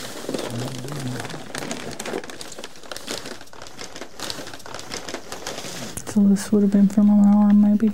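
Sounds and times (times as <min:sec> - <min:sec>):
brown packing paper crinkling and rustling while being unwrapped: 0:00.0 - 0:06.2
speech: 0:06.2 - 0:07.9.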